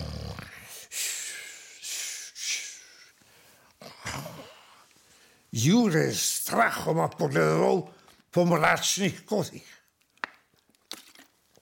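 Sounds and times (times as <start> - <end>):
voice imitating loud snoring: 0.0 - 0.7
speech: 5.6 - 9.8.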